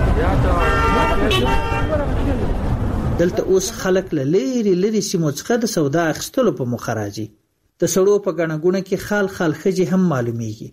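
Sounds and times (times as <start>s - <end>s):
crowd voices in a busy market with food shops: 0.0s - 2.9s
constant loud rumble of cars and rickshaws in a busy market: 0.0s - 6.8s
car and rickshaw horn toots in a busy market: 0.6s - 2.1s
speech: 3.2s - 10.7s.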